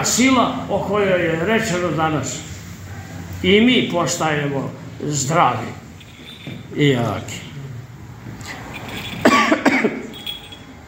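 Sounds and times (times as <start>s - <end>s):
speech: 0.0s - 2.5s, 3.4s - 5.8s, 6.7s - 7.5s
faint noise: 0.0s - 10.8s
man coughing: 9.2s - 10.2s.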